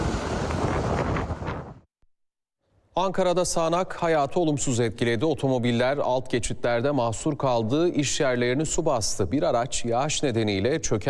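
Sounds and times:
strong wind from a tornado in Yumurtalık district, Adana, Turkey: 0.0s - 1.9s
speech: 3.0s - 11.0s.

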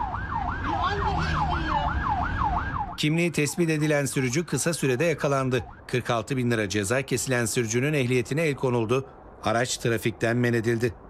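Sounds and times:
ambulance siren wailing: 0.0s - 6.1s
low road rumble: 0.0s - 11.0s
speech: 3.0s - 11.0s.

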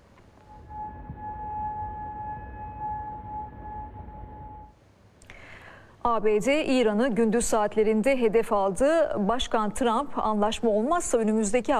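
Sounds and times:
low rumbling background: 0.0s - 4.8s
air raid siren in Bahrain: 0.3s - 4.8s
speech: 6.0s - 11.7s.

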